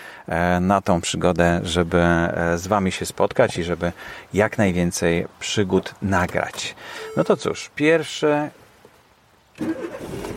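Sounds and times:
speech: 0.3s - 8.6s, 9.6s - 10.3s
car engine cranking and starting: 9.6s - 10.3s.

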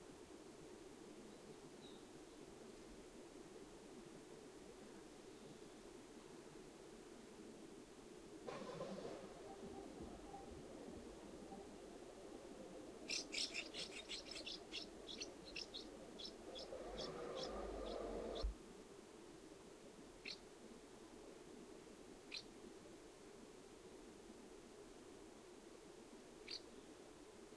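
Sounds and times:
low background noise: 0.0s - 27.5s
common house martin calls: 13.1s - 18.5s.

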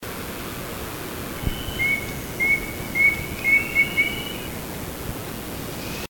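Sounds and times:
soft hiss: 0.0s - 6.0s
Chestnut-naped Antpitta Grallaria nuchalis whistled call: 1.4s - 4.6s.

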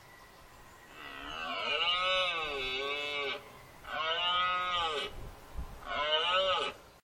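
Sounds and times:
rutting red deer stag roaring: 0.9s - 5.2s, 5.8s - 6.8s.

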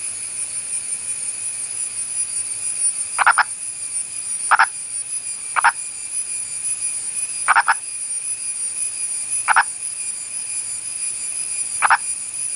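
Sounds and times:
purple frog of India calling with short clucking double notes: 3.2s - 3.5s, 4.5s - 4.8s, 5.6s - 5.8s, 7.5s - 7.8s, 9.5s - 9.7s, 11.8s - 12.0s.

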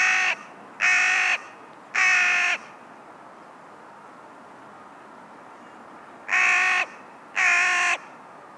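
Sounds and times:
Corvus corone carrion crow cawing: 0.0s - 2.7s, 6.3s - 8.1s.

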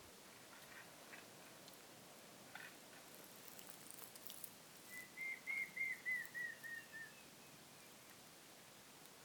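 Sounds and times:
background hiss: 0.0s - 9.2s
Montezuma quail Cyrtonyx montezumae giving a descending whistled call: 4.9s - 7.3s.

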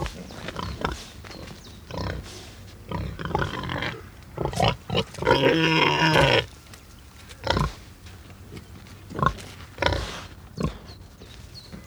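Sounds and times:
domestic pig grunting: 0.0s - 6.5s, 7.4s - 7.9s, 9.1s - 11.1s.

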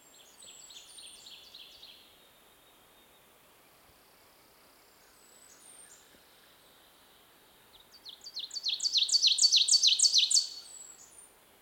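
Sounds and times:
ovenbird Seiurus aurocapilla singing: 8.2s - 11.1s.

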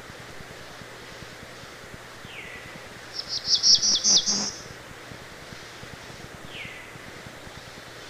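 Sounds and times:
Black-throated Blue Warbler song of high buzzy notes: 0.0s - 8.0s.

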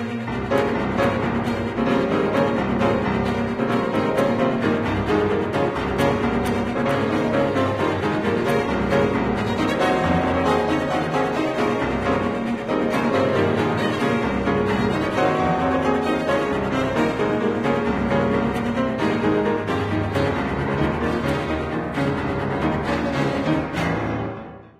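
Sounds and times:
piano quintet: 0.2s - 24.7s.

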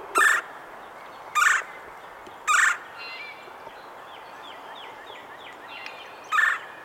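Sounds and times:
Red-bellied woodpecker Melanerpes carolinus giving rough rolling calls: 0.1s - 0.5s, 1.3s - 1.7s, 2.4s - 3.1s, 6.3s - 6.7s.

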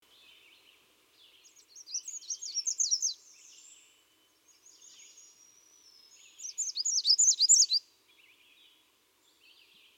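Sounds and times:
soft faint twitter: 0.1s - 9.9s
American redstart Setophaga ruticilla singing rapid thin high notes: 1.2s - 3.6s, 4.7s - 8.4s.

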